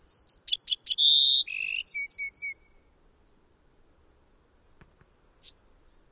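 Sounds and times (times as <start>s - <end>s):
Bewick's wren song: 0.0s - 3.4s, 5.2s - 6.1s.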